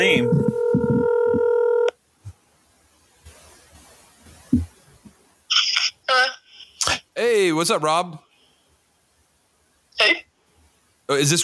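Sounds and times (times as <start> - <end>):
faint low thumps: 0.0 - 1.6, 4.4 - 5.1
steady buzzy phone tone: 0.0 - 1.9
speech: 7.4 - 8.3, 10.0 - 10.3, 11.1 - 11.4.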